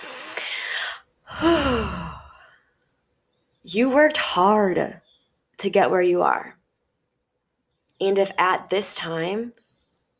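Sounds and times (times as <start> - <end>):
voiced sighing exhale: 0.0 - 2.4
deep breath taken during a guided calming exercise: 0.0 - 2.7
speech: 3.7 - 5.0, 5.6 - 6.6, 8.0 - 9.6.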